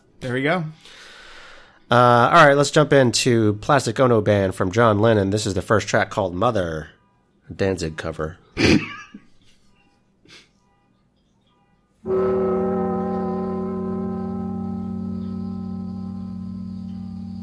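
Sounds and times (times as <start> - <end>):
speech: 0.2 - 1.0, 1.9 - 9.0
car horn blast: 12.0 - 17.4.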